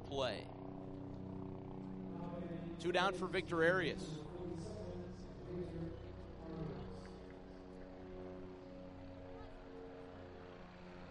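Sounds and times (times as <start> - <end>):
helicopter engine and rotor droning overhead: 0.0 - 11.0
speech: 0.1 - 0.6, 2.8 - 4.7
faint chatter: 2.1 - 10.6.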